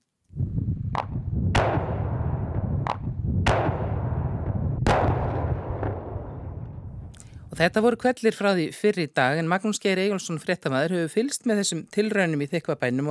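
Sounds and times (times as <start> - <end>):
low windy rumble outdoors: 0.3 - 8.1
explosive charges blasting a wind turbine: 0.4 - 7.8
speech: 7.6 - 13.0.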